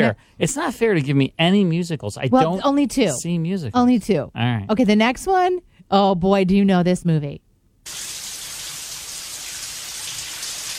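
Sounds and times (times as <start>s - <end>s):
speech: 0.0s - 8.1s
rushing water: 7.9s - 10.7s.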